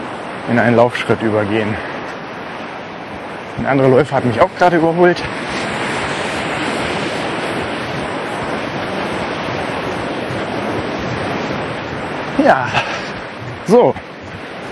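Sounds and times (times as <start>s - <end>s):
Atlantic ocean waves lapping on a beach: 0.0s - 14.7s
wind: 0.0s - 14.7s
speech: 0.5s - 1.9s, 3.6s - 5.5s, 12.4s - 12.9s, 13.7s - 14.0s.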